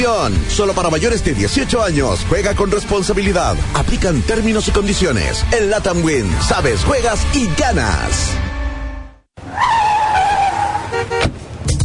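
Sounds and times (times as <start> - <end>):
speech: 0.0 - 8.5
car tires screeching: 9.4 - 11.5.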